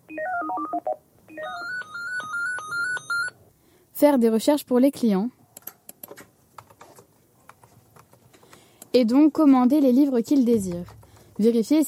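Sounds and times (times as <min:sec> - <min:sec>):
electronic telephone tones in a bookshop: 0:00.1 - 0:03.4
speech: 0:04.0 - 0:05.4, 0:09.0 - 0:11.8.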